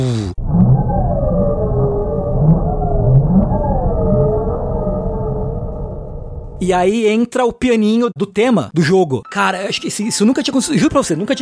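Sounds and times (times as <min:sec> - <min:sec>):
strong gusting wind whoosh in a video game startup sound: 0:00.4 - 0:06.9
speech: 0:06.6 - 0:11.4.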